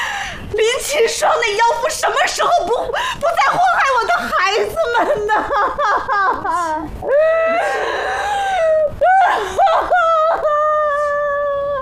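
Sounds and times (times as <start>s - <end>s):
speech: 0.9s - 8.2s
woman wailing and sobbing in grief: 2.8s - 11.7s.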